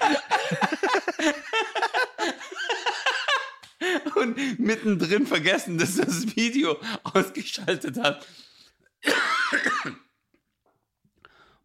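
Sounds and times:
laughter: 0.0 - 7.9
speech: 4.4 - 8.4
person coughing: 9.0 - 10.1.

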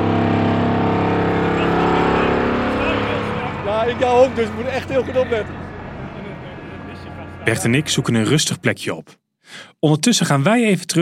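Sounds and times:
vibratory pile driver driving a sheet pile into the ground: 0.0 - 8.6
speech: 4.0 - 5.6, 7.4 - 11.0.

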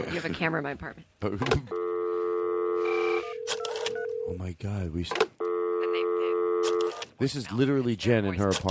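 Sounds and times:
speech: 0.0 - 1.9, 4.3 - 5.4, 7.2 - 8.6
telephone tone while a call is placed to a church: 1.7 - 4.3, 5.4 - 7.0.

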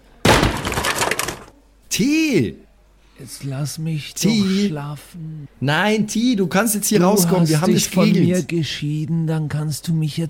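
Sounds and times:
broom rack kicked hard, clattering crash: 0.2 - 1.5
speech: 2.0 - 2.6, 3.2 - 10.2.

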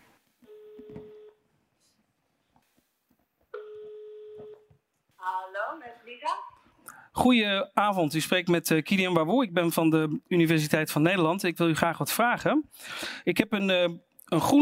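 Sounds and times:
ringback tone of an outgoing telephone call: 0.4 - 1.4, 3.6 - 4.7
speech: 7.2 - 14.6.

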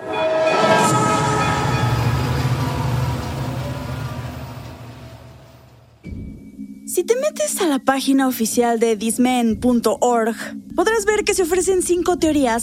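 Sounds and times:
train sound effect rushing rumble: 0.0 - 6.1
speech: 7.0 - 12.6.

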